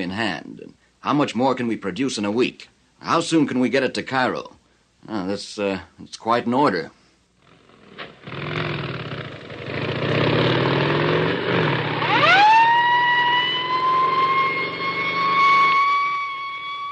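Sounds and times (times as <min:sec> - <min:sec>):
speech: 0:00.0 - 0:07.0
police escort motorcycle engines rumbling: 0:07.4 - 0:16.7
police escort sirens wailing: 0:11.3 - 0:16.8.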